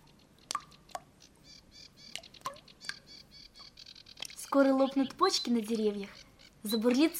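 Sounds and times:
meltwater dripping in spring thaw: 0.0 - 1.4, 2.0 - 4.8
small birds chirping and twittering: 0.0 - 7.1
speech: 4.5 - 7.1.

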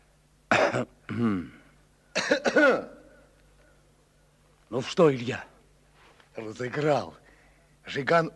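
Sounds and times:
soft quiet throat-clearing coughs: 0.5 - 3.2
speech: 0.7 - 1.6, 2.2 - 3.0, 4.7 - 5.5, 6.4 - 7.2, 7.9 - 8.3.

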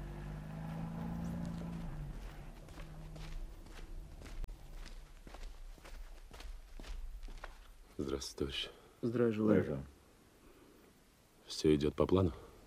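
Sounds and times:
low engine hum idling: 0.0 - 5.1
soft footsteps of people walking during an operation: 0.4 - 8.1
speech: 8.0 - 9.9, 11.6 - 12.4.

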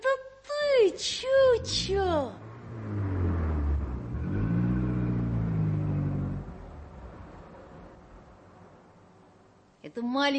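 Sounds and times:
car engine revving: 1.3 - 9.4
speech: 10.0 - 10.3.

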